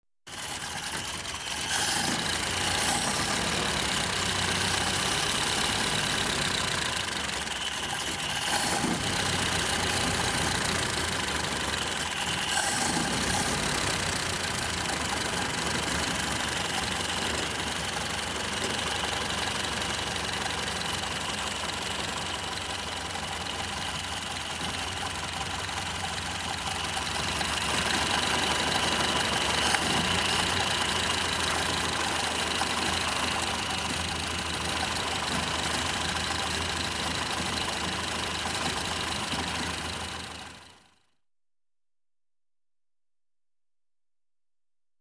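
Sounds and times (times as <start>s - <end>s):
tractor engine: 0.2s - 41.2s.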